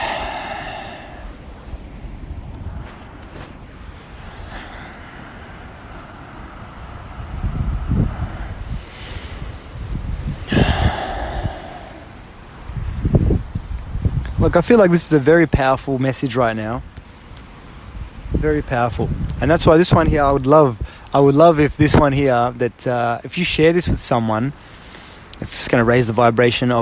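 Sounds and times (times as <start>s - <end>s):
deep breathing exercise with loud inhales and exhales: 0.0s - 1.9s, 3.8s - 9.7s, 10.3s - 12.7s
breezy outdoor background: 0.0s - 26.8s
speech: 14.5s - 16.9s, 18.4s - 24.8s, 25.4s - 26.8s.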